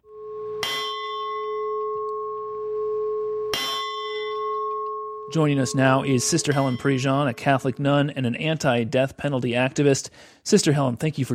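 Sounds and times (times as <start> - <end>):
large bell tolling: 0.1 - 7.8
speech: 5.3 - 11.3.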